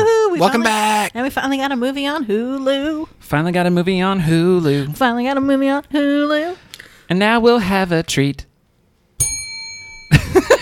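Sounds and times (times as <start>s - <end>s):
speech: 0.4s - 8.5s
bell strike ringing: 9.2s - 10.2s.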